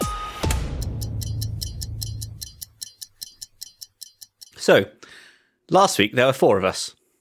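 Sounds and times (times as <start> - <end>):
clock ticking: 0.5 - 4.8
speech: 4.7 - 5.0, 5.7 - 7.0.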